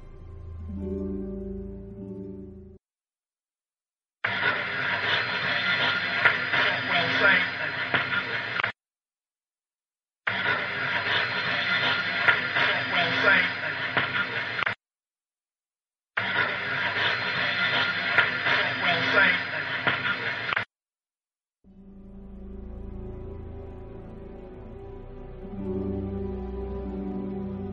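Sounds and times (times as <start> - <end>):
low tonal music: 0.0 - 2.8, 21.7 - 27.7
hissing static bursts in an EVP recording: 4.2 - 8.7, 10.3 - 14.8, 16.2 - 20.7.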